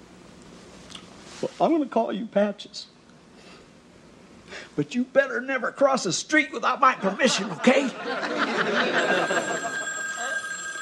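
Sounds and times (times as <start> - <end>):
speech: 1.4 - 3.0, 4.8 - 9.7
laughter: 6.8 - 10.4
telephone bell ringing: 8.6 - 10.8.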